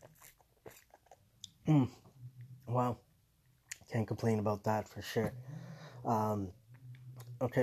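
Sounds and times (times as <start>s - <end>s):
sipping and swallowing a cold drink: 0.0s - 1.7s
speech: 1.7s - 2.0s, 2.7s - 3.0s, 3.9s - 6.6s, 7.4s - 7.6s
loud satisfied voiced exhale after the drink: 5.4s - 6.1s.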